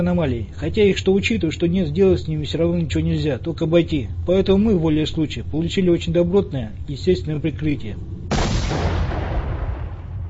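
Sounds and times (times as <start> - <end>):
speech: 0.0 - 8.8
tripwire explosion at the bottom of a stairway: 8.3 - 10.2.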